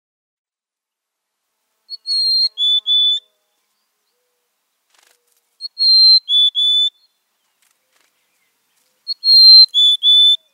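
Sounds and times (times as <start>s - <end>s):
mountain chickadee whistled song: 1.9s - 3.3s, 5.6s - 7.1s, 9.1s - 10.5s.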